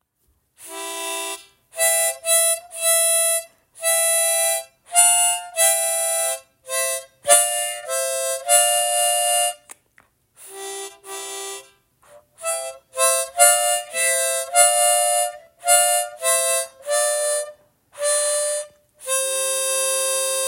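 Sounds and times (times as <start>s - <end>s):
harmonica: 0.6s - 9.7s, 10.4s - 20.4s.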